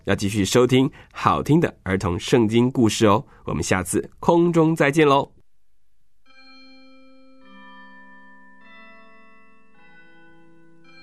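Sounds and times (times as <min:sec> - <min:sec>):
speech: 0:00.0 - 0:05.4
Christmas bells chiming: 0:06.3 - 0:11.0.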